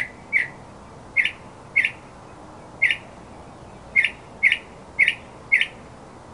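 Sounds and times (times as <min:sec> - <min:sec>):
northern mockingbird giving sharp clipped chirps: 0:00.0 - 0:05.8.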